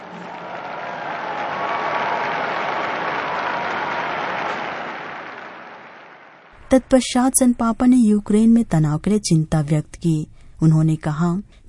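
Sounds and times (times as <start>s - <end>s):
large crowd applauding: 0.0s - 6.6s
speech: 6.7s - 11.6s.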